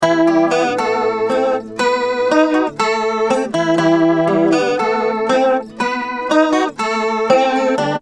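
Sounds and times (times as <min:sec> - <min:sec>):
acoustic guitar playing a chorus: 0:00.0 - 0:07.9.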